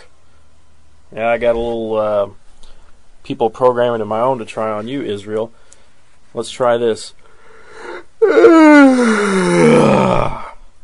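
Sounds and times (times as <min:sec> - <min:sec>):
speech: 0:01.1 - 0:02.4, 0:03.3 - 0:05.6, 0:06.3 - 0:07.2, 0:08.4 - 0:10.5
long exaggerated yawn with groaning exhale: 0:07.7 - 0:10.7.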